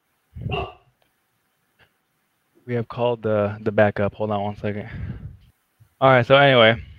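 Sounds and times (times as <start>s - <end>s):
chow chow dog barking in a small apartment: 0.4s - 0.9s
speech: 2.7s - 5.1s, 6.0s - 6.9s.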